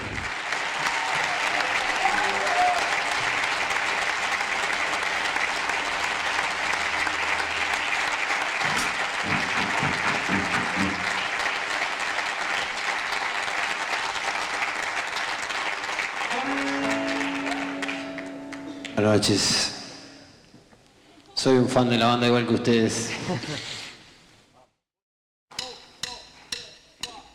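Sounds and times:
large concert audience applauding a guest performer: 0.0s - 19.4s
speech: 19.2s - 19.8s, 21.4s - 23.7s
laughter: 23.1s - 23.9s.

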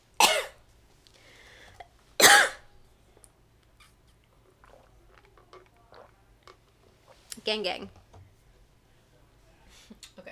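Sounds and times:
faint hum: 0.0s - 10.2s
person coughing: 0.2s - 0.6s, 2.2s - 2.6s
speech: 7.5s - 8.0s.

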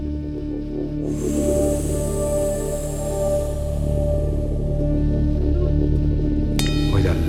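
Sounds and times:
low droning bed: 0.0s - 6.7s
sustained synthesizer tones with long reverb: 0.9s - 6.6s
bright shimmering synthesizer part: 1.0s - 5.9s.

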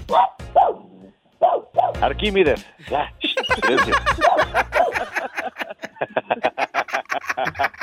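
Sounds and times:
dogs yelping barks: 0.0s - 2.0s, 3.4s - 5.6s
speech: 0.1s - 0.8s, 2.0s - 4.8s
laughter: 2.8s - 7.8s.

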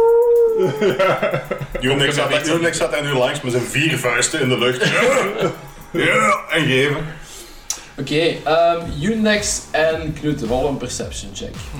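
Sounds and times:
person imitating a wolf howl: 0.0s - 0.9s
laughter: 0.6s - 6.9s
speech: 0.6s - 7.2s, 8.0s - 11.7s.

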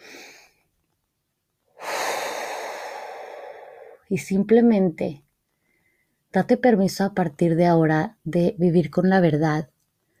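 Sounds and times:
deep breath during a calm guided relaxation: 0.0s - 0.6s, 1.8s - 4.1s, 5.5s - 6.3s
speech: 4.1s - 5.2s, 6.3s - 9.7s.

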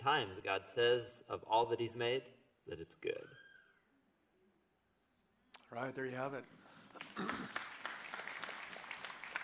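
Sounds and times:
speech: 0.0s - 3.4s, 5.7s - 7.6s
crowd applauding in a reverberant room: 6.7s - 9.4s.

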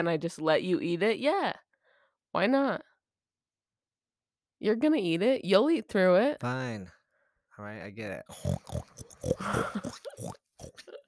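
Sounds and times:
speech: 0.0s - 1.7s, 2.3s - 2.9s, 4.6s - 7.0s, 7.6s - 11.0s
person oinking like a pig: 8.2s - 11.0s.

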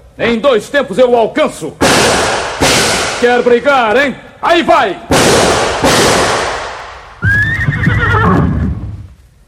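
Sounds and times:
speech: 0.2s - 2.4s, 3.2s - 5.6s
gunshots: 1.8s - 3.6s, 5.1s - 7.1s
horse neighing: 7.2s - 8.8s.

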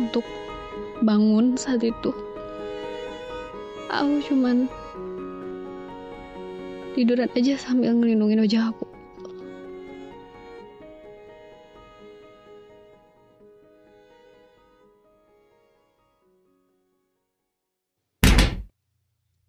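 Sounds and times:
soft sustained music: 0.0s - 17.4s
speech: 0.1s - 0.4s, 1.0s - 2.3s, 3.9s - 5.1s, 7.0s - 8.9s
bedroom door shutting with a thud: 18.2s - 18.7s.

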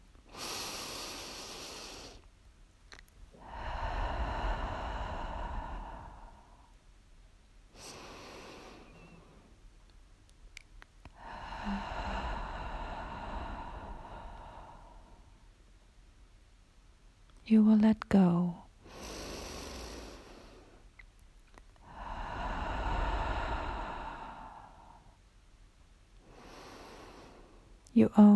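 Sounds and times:
slow breathing in through the nose and out through the mouth: 0.0s - 2.3s, 2.9s - 6.9s, 7.7s - 9.6s, 11.0s - 15.6s, 18.7s - 21.0s, 21.8s - 25.5s, 26.2s - 27.8s
speech: 17.5s - 18.6s, 28.1s - 28.3s.

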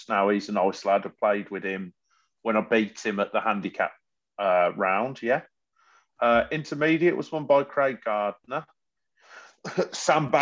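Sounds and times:
speech: 0.0s - 5.5s, 6.2s - 8.8s, 9.6s - 10.4s
person coughing: 9.6s - 10.0s.

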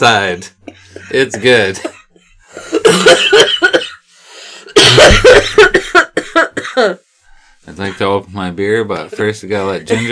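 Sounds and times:
speech: 0.0s - 2.0s, 2.6s - 3.9s, 4.9s - 5.7s, 6.7s - 10.1s
person in a coughing fit with harsh hacking coughs: 0.6s - 4.0s, 4.7s - 7.0s, 9.8s - 10.1s.

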